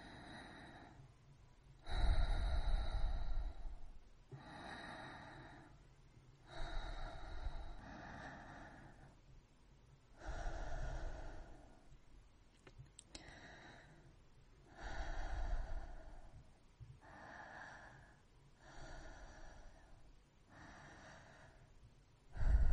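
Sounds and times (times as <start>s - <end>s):
soft breathing: 0.0s - 1.2s, 1.8s - 9.3s, 10.1s - 12.0s, 13.0s - 22.7s.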